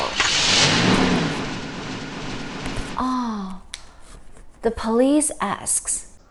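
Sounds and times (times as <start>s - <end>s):
school bus engine revving and pulling away: 0.0s - 3.0s
speech: 4.6s - 6.1s.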